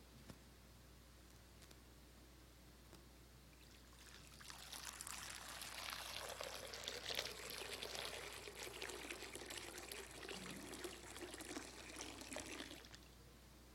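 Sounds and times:
water poured into a baptismal font during a baptism: 0:03.6 - 0:13.1.

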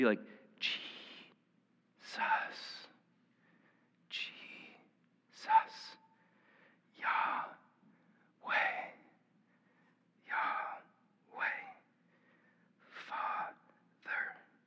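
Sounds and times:
speech: 0:00.0 - 0:01.0, 0:02.1 - 0:02.8
slow breathing in and out: 0:02.1 - 0:04.9, 0:05.8 - 0:14.6.

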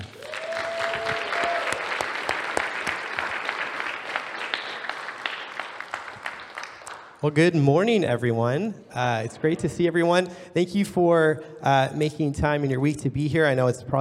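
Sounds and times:
audience applause welcoming a speaker: 0:00.0 - 0:07.2
speech: 0:07.2 - 0:13.9.

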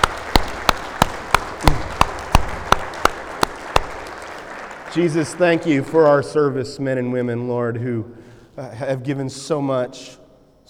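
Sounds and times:
audience applause: 0:00.0 - 0:06.0
speech: 0:05.0 - 0:10.6.

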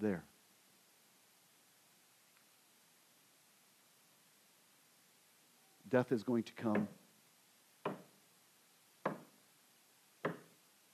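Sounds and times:
speech: 0:00.0 - 0:00.3, 0:05.9 - 0:07.0
knocking: 0:09.1 - 0:09.3.

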